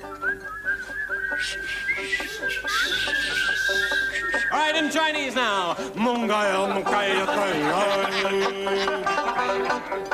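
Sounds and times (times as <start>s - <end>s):
several people whistling a wavering tune: 0.0s - 4.9s
noise: 0.0s - 10.1s
laughter: 1.5s - 4.7s, 5.8s - 10.1s
speech: 4.6s - 10.1s.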